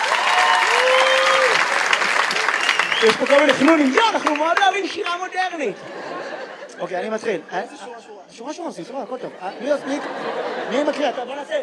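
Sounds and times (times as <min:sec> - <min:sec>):
audience applause at a poetry reading: 0:00.0 - 0:05.3
speech: 0:03.0 - 0:06.1, 0:06.8 - 0:11.6
laughter: 0:03.3 - 0:08.1, 0:09.0 - 0:11.6.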